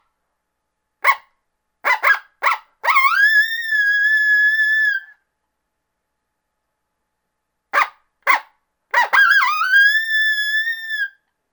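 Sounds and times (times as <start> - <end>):
coyote barks: 1.0 - 5.0, 7.7 - 11.0
coyote greeting howl: 1.9 - 5.1, 9.0 - 11.1.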